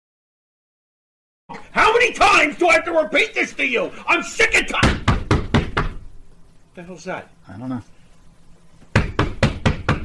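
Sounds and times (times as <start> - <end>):
speech: 2.0 - 5.0, 6.8 - 7.9
firm knocking on a door: 4.8 - 6.0, 8.9 - 10.0.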